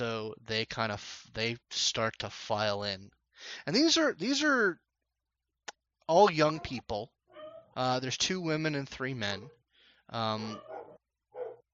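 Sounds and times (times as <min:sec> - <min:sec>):
speech: 0:00.0 - 0:04.8, 0:06.1 - 0:07.2, 0:07.8 - 0:10.7
human voice imitating a dog barking: 0:06.4 - 0:07.7.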